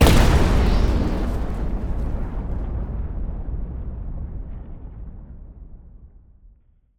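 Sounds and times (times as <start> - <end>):
reactor explosion: 0.0 - 6.4.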